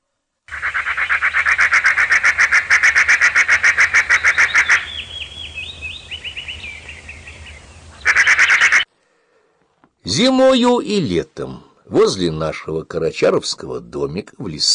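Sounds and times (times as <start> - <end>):
magpies chattering in a forest: 0.5 - 8.9
speech: 10.1 - 14.7.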